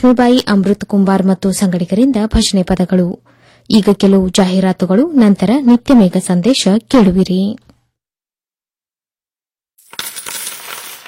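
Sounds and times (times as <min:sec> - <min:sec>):
speech: 0:00.0 - 0:07.7
coins dropping and clattering: 0:09.8 - 0:11.0.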